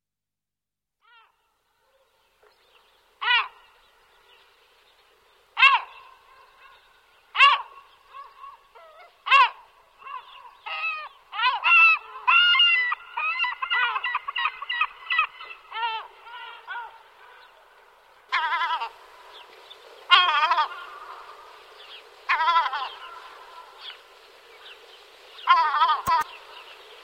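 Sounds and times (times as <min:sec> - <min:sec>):
European herring gull yelps and laughing calls: 0:03.2 - 0:03.7, 0:05.6 - 0:17.4, 0:18.3 - 0:19.0, 0:20.1 - 0:24.0, 0:25.4 - 0:26.5.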